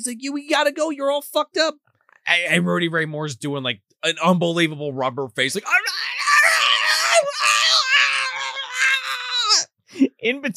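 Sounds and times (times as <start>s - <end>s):
speech: 0.0s - 6.2s, 9.9s - 10.5s
man screaming in a strained high-pitched wail: 5.6s - 9.7s.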